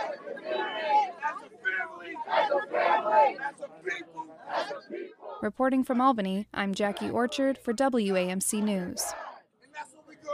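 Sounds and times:
protest crowd chatter at a street intersection: 0.0s - 5.4s, 6.8s - 7.5s, 8.3s - 10.3s
raised shouts from protest crowd: 0.0s - 5.4s, 9.0s - 10.3s
speech: 5.4s - 9.3s.

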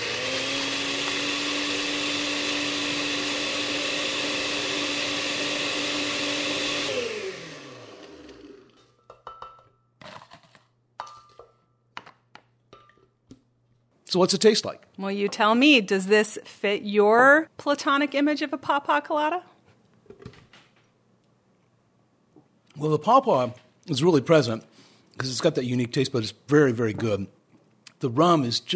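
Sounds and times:
blender crushing ice: 0.0s - 8.8s
clinks and taps: 9.0s - 9.9s
speech: 14.2s - 19.5s, 22.8s - 27.4s, 28.0s - 28.7s.

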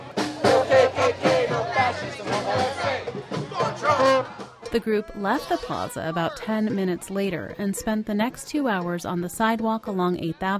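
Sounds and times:
large crowd chanting at protest: 0.0s - 7.2s
speech: 4.3s - 10.5s.

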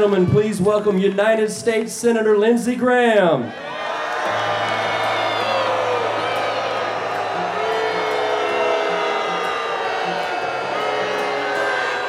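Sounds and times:
speech: 0.0s - 3.9s
large crowd booing, yelling and shouting: 3.5s - 12.0s
low sustained drone: 4.2s - 12.0s.

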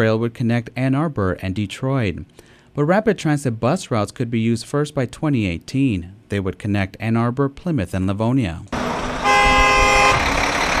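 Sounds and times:
speech: 0.0s - 8.8s
traffic rumble of a town traffic jam: 8.7s - 10.7s
vehicle horn honking in a town traffic jam outside a restaurant: 8.8s - 10.4s.

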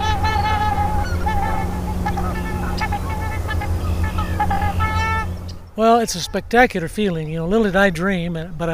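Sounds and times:
pair of trumpeter swans giving unison courtship call in Iowa wetlands: 0.0s - 6.5s
speech: 5.8s - 8.7s.

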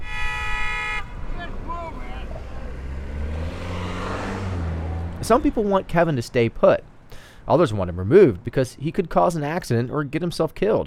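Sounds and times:
car horn blaring in traffic: 0.0s - 2.0s
engine noise: 0.0s - 8.5s
traffic rumble: 0.0s - 10.8s
speech: 5.2s - 6.9s, 7.5s - 10.8s.

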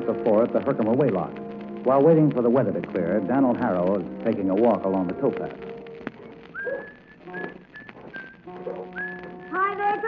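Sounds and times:
faint ambient noise: 0.0s - 10.0s
speech: 0.2s - 5.7s
person whistling a short wandering tune: 6.5s - 8.4s, 9.0s - 9.6s.

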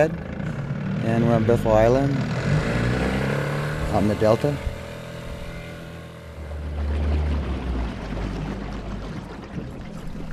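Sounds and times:
speech: 0.0s - 0.2s, 1.0s - 2.4s, 3.9s - 4.7s
boat engine rumble on the Delta waterways off Bethel Island: 0.0s - 10.3s
rushing water splashing against the boat hull: 3.0s - 10.3s.

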